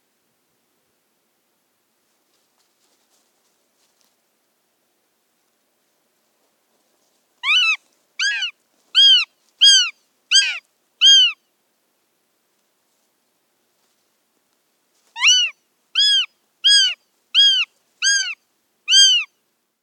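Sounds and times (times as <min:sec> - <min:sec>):
Northern goshawk nasal calls: 0:07.4 - 0:11.4, 0:15.2 - 0:19.3.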